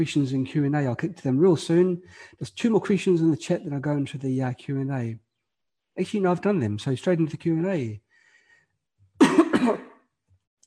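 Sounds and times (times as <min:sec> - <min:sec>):
speech: 0:00.0 - 0:05.2, 0:06.0 - 0:08.0, 0:09.7 - 0:09.9
person clearing throat: 0:09.2 - 0:10.0
person coughing: 0:09.2 - 0:10.0.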